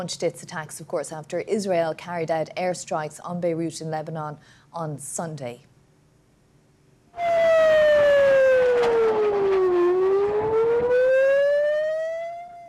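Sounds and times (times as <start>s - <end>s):
speech: 0.0s - 5.7s
faint noise: 0.0s - 12.6s
air raid sirens wailing in Jerusalem Israel for incoming Iranian missiles: 7.2s - 12.6s.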